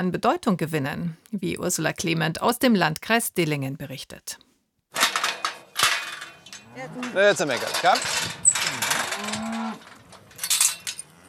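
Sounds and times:
speech: 0.0 - 5.1, 6.8 - 8.4
rustling and shuffling: 4.9 - 11.0
cattle mooing on an organic farm: 6.5 - 7.8, 8.5 - 11.2.

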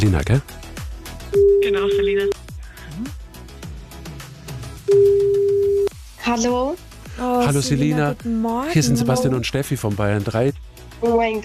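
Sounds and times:
speech: 0.0 - 0.7, 1.3 - 2.4, 3.0 - 3.2, 6.3 - 11.4
telephone ringing tone on an outgoing call: 4.9 - 5.9.

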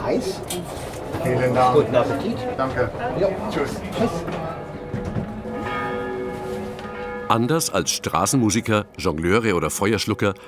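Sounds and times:
speech: 0.1 - 4.6, 7.3 - 10.4
church bells of a large city church ringing for eight o'clock in the evening: 3.4 - 10.4.

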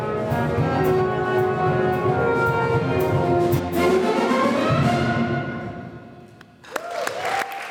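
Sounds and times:
brass-heavy ensemble playing a closing passage: 0.0 - 6.3
audience clapping after concert finale: 6.6 - 7.7.

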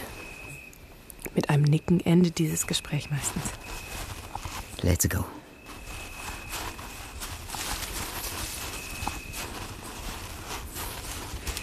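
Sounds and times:
rustling ambience: 0.0 - 11.6
speech: 1.4 - 3.6, 4.8 - 5.4
footsteps crunching along a trodden dirt path through bushes outdoors: 3.1 - 11.6.

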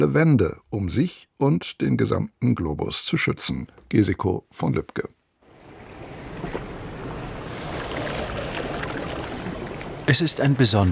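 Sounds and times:
speech: 0.0 - 5.2, 10.1 - 10.8
continuous rushing surf: 5.4 - 10.8
wind noise: 5.5 - 10.2.

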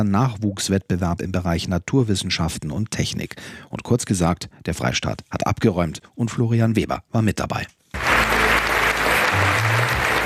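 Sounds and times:
speech: 0.0 - 8.4
large crowd applauding inside an event tent: 8.0 - 10.2
low musical tones: 8.0 - 10.2.

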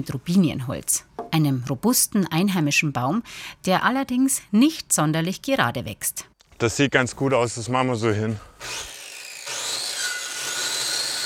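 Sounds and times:
speech: 0.0 - 8.9
hand saw rasping through wooden tree trunks: 8.6 - 11.2.

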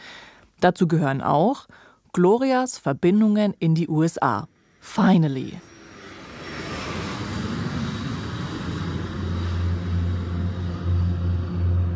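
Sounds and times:
speech: 0.6 - 5.7
propeller aircraft engine droning in flight: 5.6 - 11.9.

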